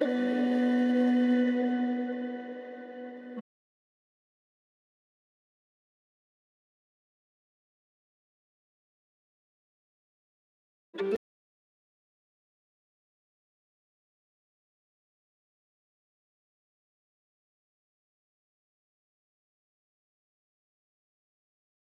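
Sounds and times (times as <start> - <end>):
RnB flute melody loop in B minor: 0.0 - 3.4, 11.0 - 11.2.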